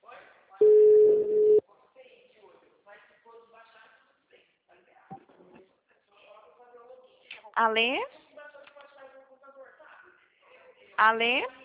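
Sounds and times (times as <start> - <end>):
steady telephone tone while placing a call: 0.6 - 1.6
speech: 7.6 - 8.1, 11.0 - 11.6.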